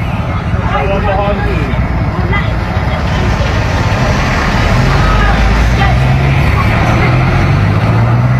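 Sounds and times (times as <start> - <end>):
indistinct voices: 0.0 - 8.0
constant traffic noise: 0.0 - 8.3
heavy engines of four large coaches rumbling past: 0.0 - 8.3.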